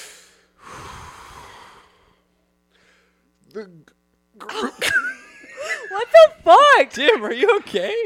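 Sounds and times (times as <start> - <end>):
deep breath drawn into a microphone: 0.0 - 3.3
quiet hiss: 0.0 - 8.0
speech: 3.5 - 5.0, 5.9 - 8.0
laughter: 4.4 - 8.0.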